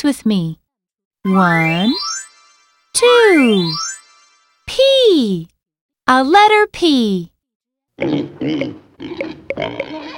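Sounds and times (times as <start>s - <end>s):
speech: 0.0s - 0.6s, 1.2s - 2.1s, 3.0s - 3.9s, 4.7s - 5.5s, 6.1s - 7.3s, 8.0s - 10.0s
pig oinking and grunting: 8.0s - 10.1s.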